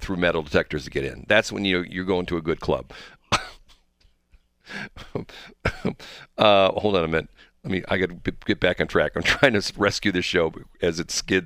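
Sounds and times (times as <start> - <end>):
speech: 0.0 - 3.2, 4.7 - 11.4
small breaths: 2.9 - 3.3, 4.6 - 6.4, 7.3 - 7.7
harsh coughs: 3.3 - 3.8, 4.7 - 6.1
throat-clearing rasp: 4.9 - 6.0.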